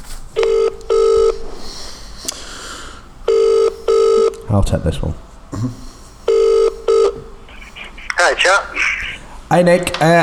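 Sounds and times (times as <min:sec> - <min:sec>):
buzzy telephone ringing tone over the line: 0:00.4 - 0:01.4, 0:03.3 - 0:04.4, 0:06.3 - 0:07.3
speech: 0:04.5 - 0:05.9, 0:08.4 - 0:08.8, 0:09.5 - 0:10.2.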